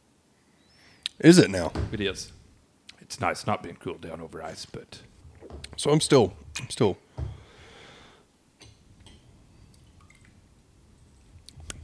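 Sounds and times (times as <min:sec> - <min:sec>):
speech: 0:01.2 - 0:02.4, 0:03.1 - 0:07.0
water drips falling into a glass of whiskey: 0:08.6 - 0:10.4.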